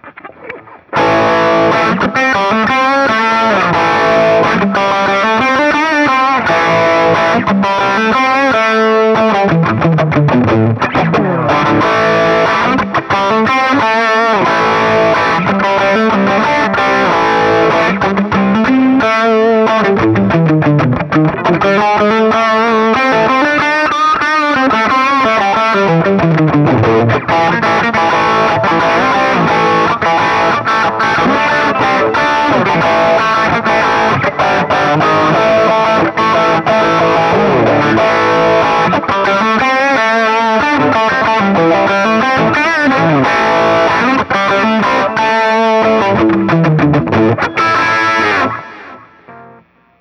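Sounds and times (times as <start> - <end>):
Guild Starfire III guitar riffs through SuperTweed: 0.0 - 49.9.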